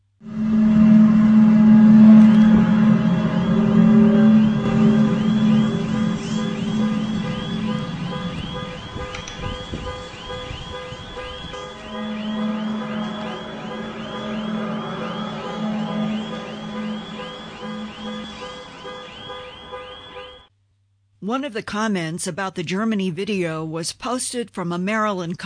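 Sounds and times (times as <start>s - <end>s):
deep droning horn-like blare from the sky in Germany: 0.0s - 20.5s
rapid warbling car alarm tone set off by the horn sound: 0.2s - 20.5s
speech: 21.4s - 25.4s.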